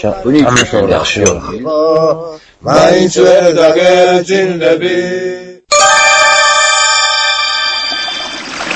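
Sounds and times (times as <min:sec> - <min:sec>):
speech: 0:00.0 - 0:05.4
sustained steady tones: 0:05.7 - 0:08.6.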